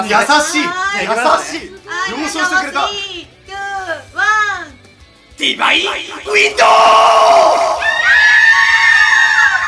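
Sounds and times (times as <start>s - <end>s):
speech: 0.0s - 4.7s, 5.4s - 7.8s
group of people screaming in one long high shrill cry: 6.5s - 9.6s.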